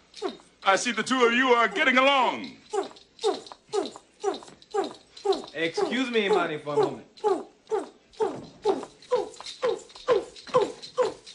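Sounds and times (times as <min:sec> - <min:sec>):
dog whimpering and yipping: 0:00.1 - 0:00.5, 0:02.6 - 0:11.3
speech: 0:00.7 - 0:02.8, 0:05.6 - 0:07.5.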